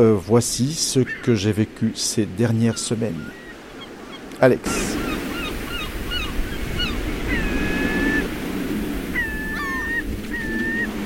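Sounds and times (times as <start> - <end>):
speech: 0.0 - 3.4, 4.4 - 5.0
seagulls calling: 0.8 - 11.0
strong wind behind a boat door: 4.5 - 11.0.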